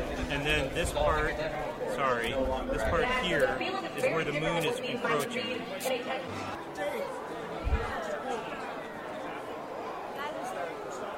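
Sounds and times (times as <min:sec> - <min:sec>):
large crowd murmuring and chattering: 0:00.0 - 0:11.1
speech: 0:00.3 - 0:08.0.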